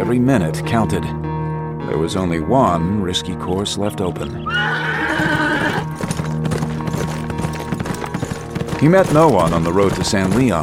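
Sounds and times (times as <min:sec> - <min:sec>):
speech: 0:00.1 - 0:01.3, 0:01.9 - 0:05.9, 0:08.8 - 0:10.6
horse whinnying: 0:04.3 - 0:06.0
horse hooves clip-clopping on road into town outskirts: 0:04.8 - 0:10.6.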